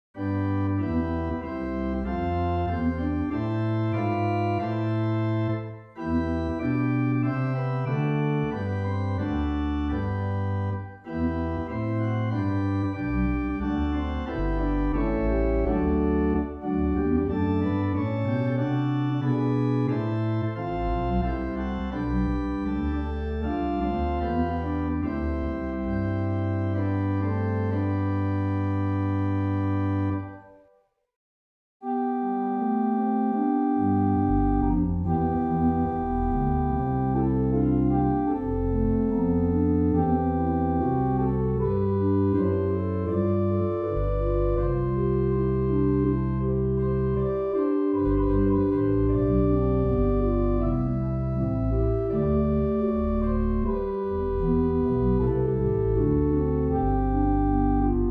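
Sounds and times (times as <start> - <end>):
classical organ music: 0.2 - 30.7, 31.8 - 58.0.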